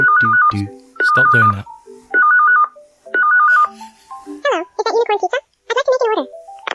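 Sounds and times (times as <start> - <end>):
speech: 0.0 - 1.8
electronic phone ringing in a pizza-making video game: 0.0 - 3.8
high-pitched voice talking in quick bursts: 4.4 - 6.3.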